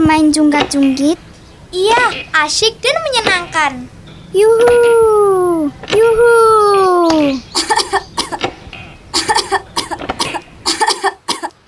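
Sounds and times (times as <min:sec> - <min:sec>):
speech: 0:00.1 - 0:08.5
child coughing: 0:07.6 - 0:08.5, 0:09.2 - 0:11.6.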